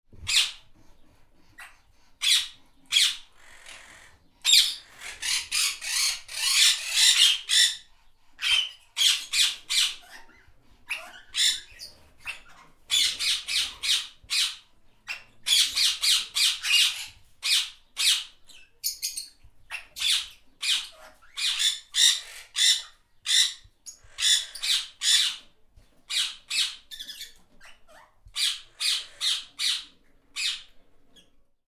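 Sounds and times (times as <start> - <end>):
parrot: 0.1 - 25.5, 26.1 - 31.4.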